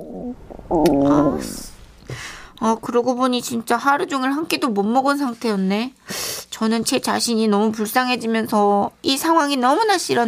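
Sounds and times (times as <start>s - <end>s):
speech: 0.0s - 1.7s, 2.6s - 10.2s
cartoonish stomach growling: 0.0s - 2.1s.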